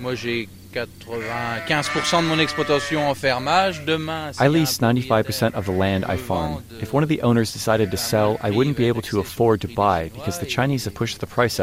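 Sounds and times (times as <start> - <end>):
speech: 0.0 - 11.6
flock of black-faced Suffolk sheep bleating while being fed: 1.1 - 9.3.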